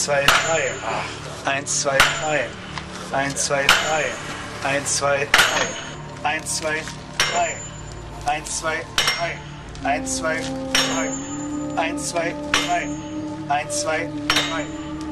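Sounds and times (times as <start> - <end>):
voices talking: 0.0 - 15.1
hammers striking iron wedges to lift a heavy stone block: 0.2 - 1.0, 1.9 - 2.6, 3.5 - 4.4, 5.2 - 6.1, 7.2 - 9.6, 10.7 - 11.6, 12.5 - 13.0, 14.3 - 15.0.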